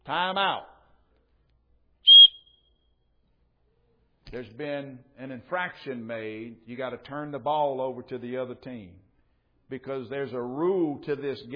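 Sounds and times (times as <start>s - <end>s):
speech: 0.1s - 0.7s, 4.3s - 9.0s, 9.7s - 11.5s
referee's whistle short shrill blast: 2.1s - 2.7s.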